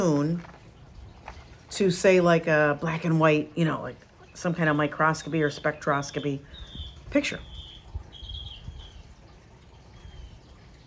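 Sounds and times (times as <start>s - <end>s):
speech: 1.8s - 7.5s
faint bird giving a thin high whistled chirp: 4.2s - 10.8s.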